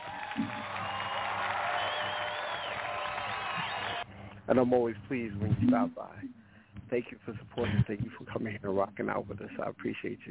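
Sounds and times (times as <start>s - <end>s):
crowd applause: 0.0s - 4.1s
faint cheering: 0.0s - 4.1s
speech: 4.5s - 10.2s.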